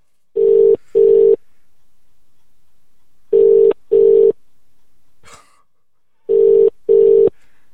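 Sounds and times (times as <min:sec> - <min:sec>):
faint rustle: 0:00.0 - 0:05.2
phone ringback tone: 0:00.4 - 0:01.4, 0:03.4 - 0:04.3, 0:06.3 - 0:07.3.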